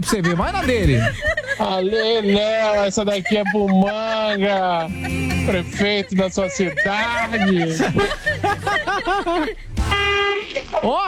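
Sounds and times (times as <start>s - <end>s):
laughter: 0.0s - 11.0s
speech: 0.0s - 11.0s
strange vehicle horn honking with warbling tooted notes: 9.8s - 10.5s.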